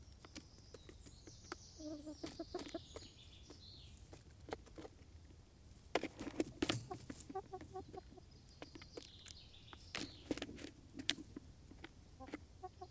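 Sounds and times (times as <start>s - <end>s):
chickens clucking while eating: 0.0s - 12.8s
chickens pecking taps and scratches: 0.0s - 12.8s.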